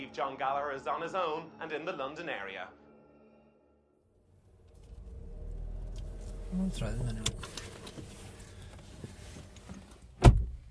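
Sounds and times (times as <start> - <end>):
speech: 0.1 - 2.8, 6.5 - 7.5
quiet rumbling background: 4.3 - 10.6
car door thunk as a person gets out of a car: 10.2 - 10.6.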